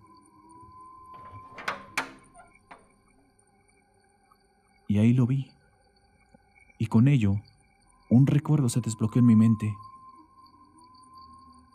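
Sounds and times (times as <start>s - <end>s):
wardrobe door sliding open with soft rolling rumble: 1.0s - 2.9s
sharp knocks and clatters: 1.1s - 3.0s
speech: 4.9s - 5.6s, 6.8s - 7.5s, 8.1s - 9.9s.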